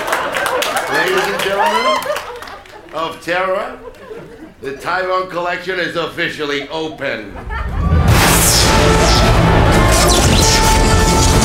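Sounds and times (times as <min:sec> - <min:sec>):
laughter: 0:00.0 - 0:05.3, 0:06.2 - 0:08.1
speech: 0:01.0 - 0:02.2, 0:02.9 - 0:07.8
fireworks booming for an official opening: 0:07.4 - 0:11.4
fireworks crackling: 0:08.0 - 0:11.4.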